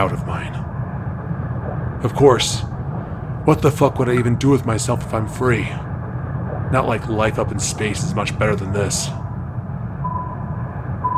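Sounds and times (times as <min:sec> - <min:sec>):
speech: 0:00.0 - 0:00.6, 0:02.0 - 0:02.7, 0:03.4 - 0:05.9, 0:06.7 - 0:09.2
steady low rumble inside a submarine: 0:00.0 - 0:11.1
mid-pitched electronic sonar proximity beeps inside a submarine: 0:10.0 - 0:11.1.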